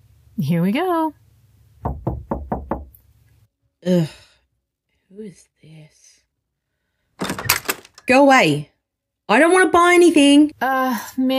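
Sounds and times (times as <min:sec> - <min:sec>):
speech: 0:00.4 - 0:01.2, 0:03.8 - 0:04.3, 0:05.2 - 0:06.1, 0:08.1 - 0:08.7, 0:09.3 - 0:11.3
knocking on wooden front door of a house: 0:01.8 - 0:02.9.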